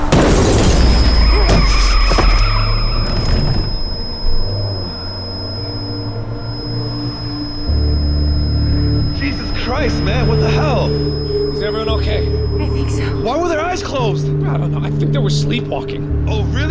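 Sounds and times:
gunshot fired at a van's windshield: 0.0 - 3.5
van windshield glass crashing and shattering: 0.0 - 4.1
lingering high ringing tone: 0.0 - 15.6
speech: 15.3 - 16.6.

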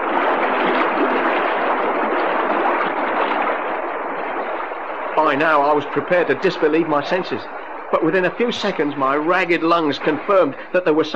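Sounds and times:
gush of water inside a submarine: 0.0 - 11.1
speech: 5.2 - 11.1.

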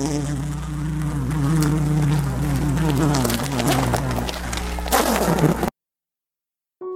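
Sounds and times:
honeybees buzzing inside a hive during waggle dance: 0.0 - 5.7.

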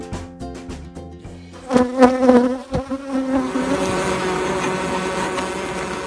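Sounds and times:
dense swarm of honeybees buzzing outside a house: 1.6 - 6.0.

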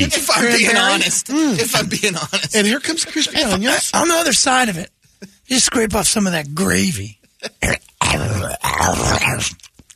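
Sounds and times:
speech: 0.0 - 9.7
person grunting and snorting while noisily eating pizza: 7.6 - 9.6.

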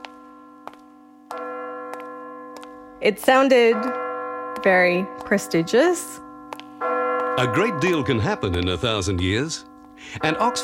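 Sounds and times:
resonant bells ringing: 0.0 - 10.6
speech: 3.0 - 4.0, 4.6 - 6.2, 7.4 - 10.6.

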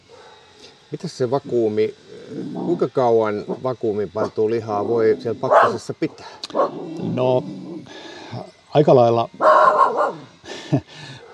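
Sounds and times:
speech: 0.9 - 7.6, 8.3 - 9.6, 10.7 - 11.1
fox terrier hunting dog barking and yelping: 5.5 - 5.8, 6.5 - 6.8, 9.4 - 10.3.

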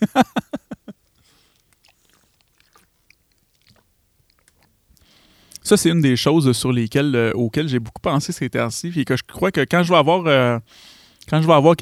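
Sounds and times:
person taking a small sip of water: 0.0 - 5.7
faint mouth clicks: 0.0 - 6.3, 9.1 - 11.8
speech: 0.1 - 0.3, 5.7 - 11.8.

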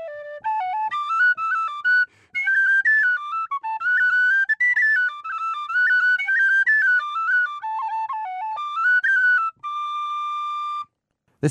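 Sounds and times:
tin whistle playing a lively Irish melody: 0.0 - 10.9.

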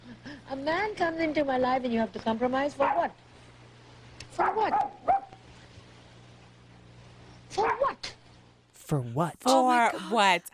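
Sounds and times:
faint low hum: 0.0 - 10.5
speech: 0.3 - 3.3, 4.4 - 5.1, 8.9 - 10.5
small lapdog barking: 2.8 - 3.2, 4.4 - 5.4, 7.5 - 8.0.

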